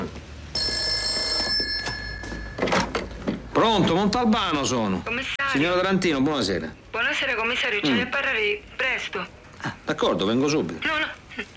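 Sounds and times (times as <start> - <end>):
telephone ringing with a bright electronic trill: 0.5 - 3.2
speech: 3.6 - 11.5.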